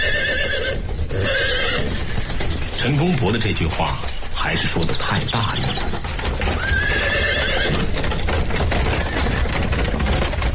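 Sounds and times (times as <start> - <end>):
horse whinnying: 0.0 - 2.3, 6.4 - 8.1
horse hooves clip-clopping: 0.0 - 10.5
speech: 2.8 - 6.2.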